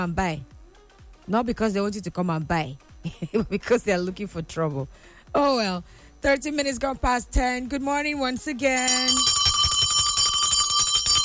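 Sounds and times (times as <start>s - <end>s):
speech: 0.0s - 0.5s, 1.3s - 9.4s
bell ringing: 8.8s - 11.2s.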